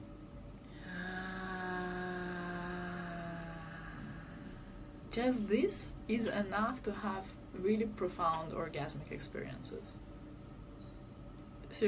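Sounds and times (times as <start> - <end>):
deep slow inhale with a throaty edge: 0.6 - 5.1
speech: 5.2 - 10.1.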